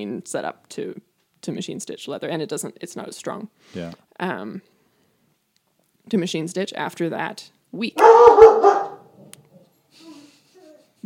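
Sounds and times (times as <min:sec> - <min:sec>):
speech: 0:00.0 - 0:04.7, 0:06.1 - 0:08.7
dog barking in a studio: 0:08.0 - 0:09.2.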